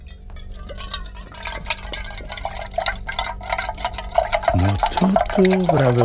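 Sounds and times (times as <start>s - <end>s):
soda pouring into a glass with a fizzing gurgle: 0.5s - 6.0s
speech: 4.6s - 6.0s.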